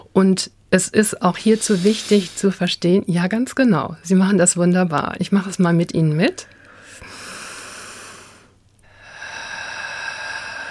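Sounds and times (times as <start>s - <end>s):
speech: 0.2s - 7.2s
slow deep breath in during a guided breathing exercise: 1.4s - 2.5s, 6.6s - 10.6s
long steady exhale during a guided breathing exercise: 1.4s - 2.6s, 6.5s - 10.6s.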